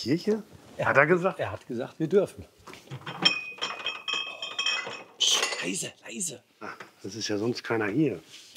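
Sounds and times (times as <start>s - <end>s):
speech: 0.0s - 3.2s, 5.6s - 8.5s
beer glasses clinking in a late-night toast: 3.1s - 5.8s.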